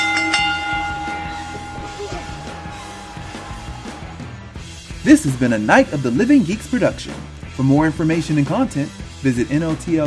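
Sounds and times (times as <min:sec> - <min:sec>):
bell ringing: 0:00.0 - 0:04.7
low rumbling: 0:00.0 - 0:06.2
speech: 0:05.0 - 0:10.0.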